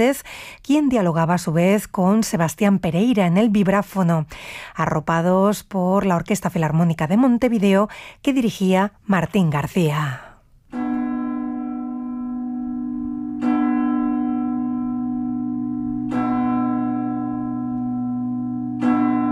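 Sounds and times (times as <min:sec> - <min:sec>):
speech: 0:00.0 - 0:10.8
church bells ringing: 0:10.7 - 0:19.2.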